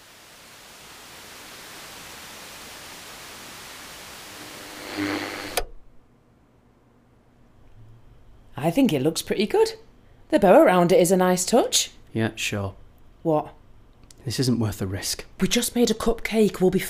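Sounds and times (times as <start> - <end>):
radio static from scanning frequencies: 0.0 - 5.9
faint low hum: 0.0 - 16.8
speech: 8.6 - 13.6, 14.2 - 16.8.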